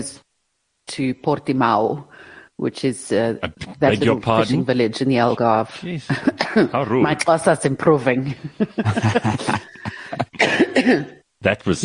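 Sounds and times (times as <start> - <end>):
speech: 0.0 - 0.2, 0.9 - 11.8
laughter: 8.2 - 10.8
person in a coughing fit: 9.0 - 11.2.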